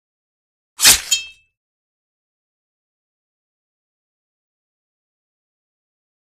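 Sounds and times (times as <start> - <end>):
sword stab through: 0.8 - 1.4.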